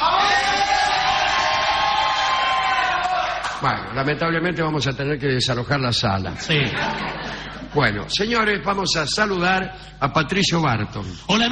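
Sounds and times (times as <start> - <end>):
studio audience shouting and yelling: 0.0 - 3.6
speech: 3.6 - 11.5
laughter: 6.4 - 8.1.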